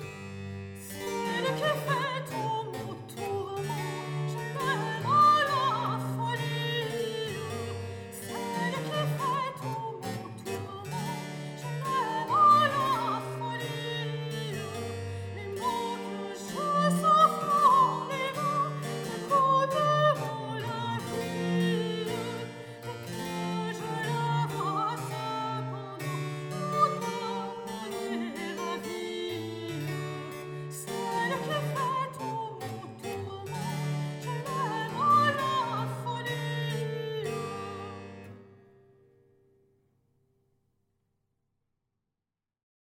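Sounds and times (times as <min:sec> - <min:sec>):
soprano singing a baroque couplet: 0:00.8 - 0:38.4.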